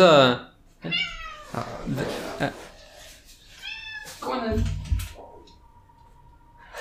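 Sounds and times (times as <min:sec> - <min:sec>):
speech: 0:00.0 - 0:02.6
cat meowing: 0:00.8 - 0:01.6, 0:03.6 - 0:04.2.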